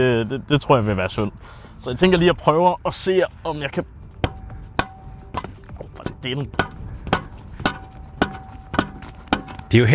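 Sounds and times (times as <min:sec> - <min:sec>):
speech: 0:00.0 - 0:04.0, 0:06.2 - 0:06.7, 0:09.7 - 0:09.9
hammer striking something hard: 0:04.2 - 0:09.9.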